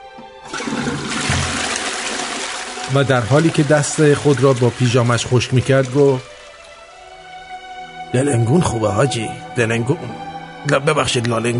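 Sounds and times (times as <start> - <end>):
toilet flushing: 0.4 - 7.2
speech: 2.9 - 6.3, 8.1 - 11.5.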